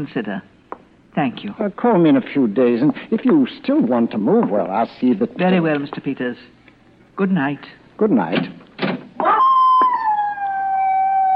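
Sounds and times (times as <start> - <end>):
speech: 0.0 - 0.6, 1.2 - 6.6, 7.2 - 8.6
dog howling: 9.2 - 11.3.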